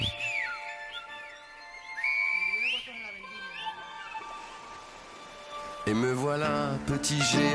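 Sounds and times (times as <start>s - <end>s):
loud sliding whistles of Silbo Gomero whistled language: 0.0s - 4.2s
steady sustained tones: 0.0s - 7.5s
speech: 5.9s - 7.5s.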